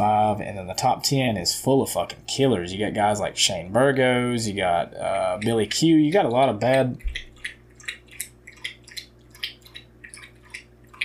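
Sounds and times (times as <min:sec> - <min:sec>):
speech: 0:00.0 - 0:07.3
low hum: 0:00.0 - 0:11.0
dog lapping water: 0:05.0 - 0:11.0.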